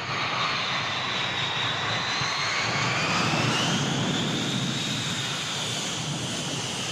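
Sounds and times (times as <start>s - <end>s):
engines of a huge silver jet airliner taxiing up to gate 4 at night: 0.0s - 6.9s.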